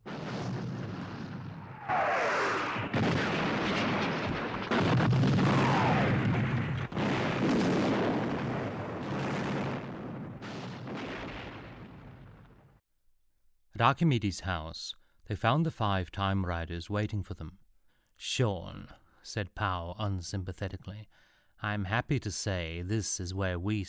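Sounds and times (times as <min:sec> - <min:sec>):
rumbling debris: 0:00.0 - 0:12.7
loud booming explosions against buildings: 0:00.0 - 0:12.8
descending whistles of incoming projectiles: 0:01.2 - 0:06.9
speech: 0:13.8 - 0:17.6, 0:18.2 - 0:23.8.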